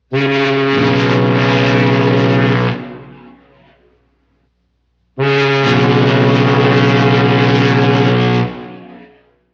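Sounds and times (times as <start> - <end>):
two-tone fog horn: 0.1 - 3.8, 5.2 - 9.4.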